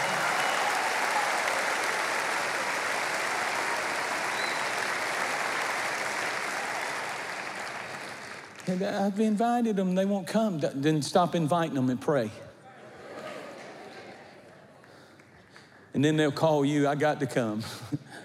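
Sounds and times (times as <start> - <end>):
audience applause: 0.0 - 8.9
speech: 8.7 - 12.5, 16.0 - 18.0.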